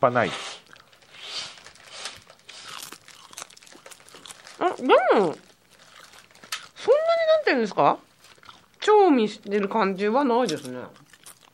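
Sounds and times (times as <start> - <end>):
speech: 0.0 - 0.6, 4.8 - 5.5, 6.8 - 8.1, 8.8 - 11.0
crunching a very thin crispy snack: 0.6 - 6.9, 8.1 - 8.8, 10.4 - 11.5.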